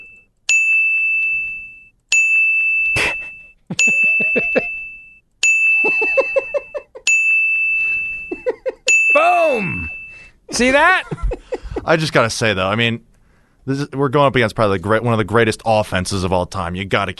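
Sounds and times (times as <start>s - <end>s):
bright bell dinging: 0.0s - 10.3s
people laughing: 3.7s - 4.8s, 5.8s - 7.0s, 8.3s - 8.9s, 10.9s - 12.1s
speech: 3.8s - 4.2s, 10.6s - 11.2s, 11.9s - 17.1s.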